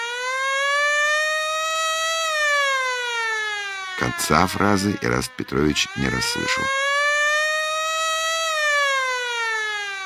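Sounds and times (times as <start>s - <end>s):
powerful siren roaring: 0.0s - 10.0s
speech: 4.0s - 6.8s.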